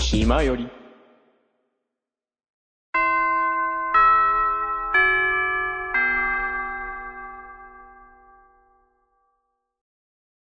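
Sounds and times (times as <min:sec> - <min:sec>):
speech: 0:00.1 - 0:00.8
clear chime tones: 0:03.0 - 0:09.2.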